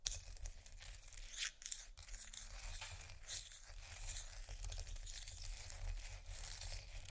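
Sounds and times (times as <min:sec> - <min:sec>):
ice scratching: 0:00.1 - 0:07.1.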